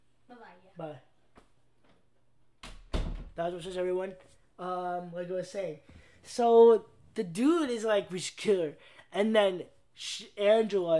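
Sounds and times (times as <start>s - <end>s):
speech: 0.8s - 1.1s, 3.4s - 10.9s
door swinging shut with thud: 2.6s - 3.4s.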